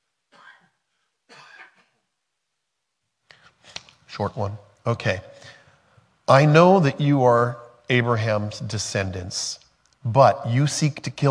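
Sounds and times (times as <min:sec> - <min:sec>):
person coughing in a harsh raspy fit: 0:00.3 - 0:02.0
speech: 0:04.2 - 0:05.4, 0:06.3 - 0:11.2.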